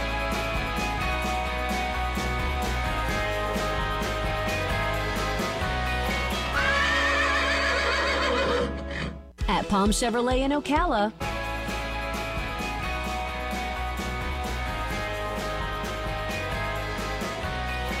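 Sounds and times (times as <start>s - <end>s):
music: 0.0s - 17.9s
horse whinnying: 6.5s - 9.3s
speech: 9.7s - 11.2s.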